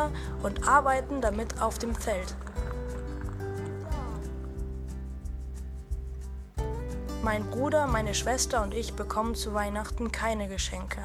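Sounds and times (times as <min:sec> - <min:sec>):
speech: 0:00.0 - 0:02.5, 0:07.2 - 0:11.0
horse hooves clip-clopping pulling a cart: 0:00.0 - 0:11.0.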